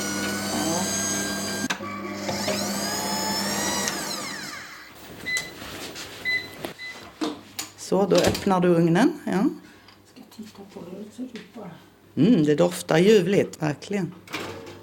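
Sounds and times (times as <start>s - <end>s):
kitchen machine motor whirring while mashing potatoes with milk and butter: 0.0s - 5.0s
speech: 7.9s - 9.7s, 10.5s - 14.4s.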